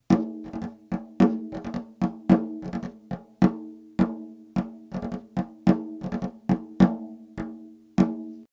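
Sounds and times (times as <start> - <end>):
pandero globo frame drum: 0.0 - 8.5.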